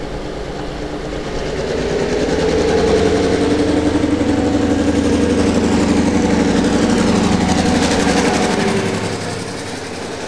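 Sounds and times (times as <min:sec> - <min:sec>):
model train passing by: 0:00.0 - 0:10.2.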